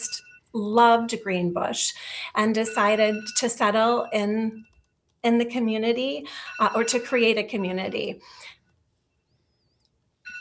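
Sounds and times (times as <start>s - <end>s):
faint high wavering tone: 0.0s - 1.2s, 2.4s - 4.8s, 6.4s - 8.1s, 9.1s - 10.3s
speech: 0.5s - 8.5s
mobile phone ringing: 2.6s - 4.7s, 6.2s - 8.1s.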